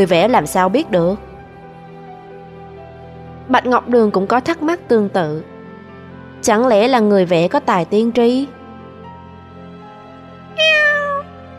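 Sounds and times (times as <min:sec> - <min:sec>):
speech: 0:00.0 - 0:01.3, 0:03.5 - 0:05.5, 0:06.4 - 0:08.6
black cat meowing: 0:10.6 - 0:11.4.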